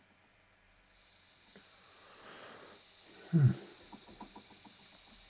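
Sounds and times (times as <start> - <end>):
crickets chirping: 0.7 - 5.2.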